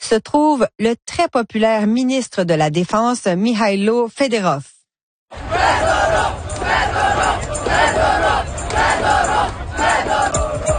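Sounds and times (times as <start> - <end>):
speech: 0.1 - 4.7
thousands of street protesters chanting: 5.3 - 10.7.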